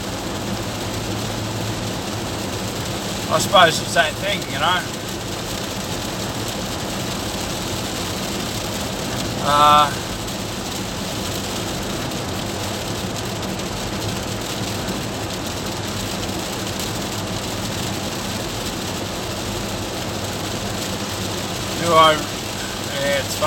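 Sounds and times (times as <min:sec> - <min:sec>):
heavy rain falling: 0:00.0 - 0:23.4
speech: 0:03.3 - 0:05.0, 0:09.5 - 0:10.1, 0:21.9 - 0:22.3, 0:23.1 - 0:23.4
brief voice sounds: 0:09.4 - 0:10.0.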